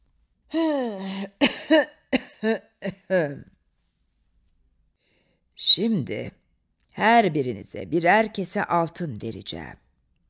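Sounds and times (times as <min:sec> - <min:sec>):
speech: 0:00.5 - 0:03.5, 0:05.6 - 0:06.4, 0:07.0 - 0:09.8
old man coughing: 0:01.4 - 0:03.4.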